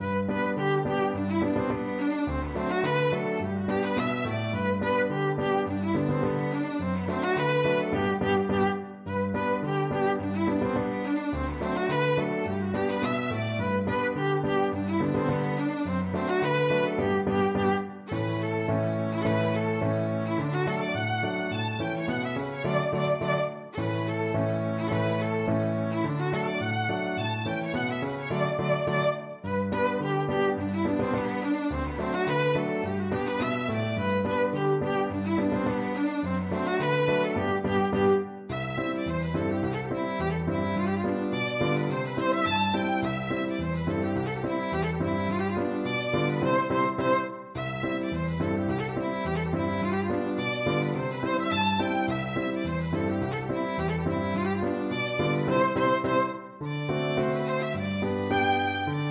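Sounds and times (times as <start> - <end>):
violin playing a schottische: 0.0 - 59.0.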